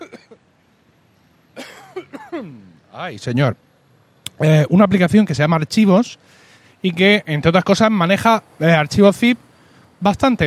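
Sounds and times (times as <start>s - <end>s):
person coughing: 0.0s - 0.4s, 1.6s - 2.7s
speech: 2.4s - 3.6s, 4.4s - 9.4s, 10.0s - 10.4s.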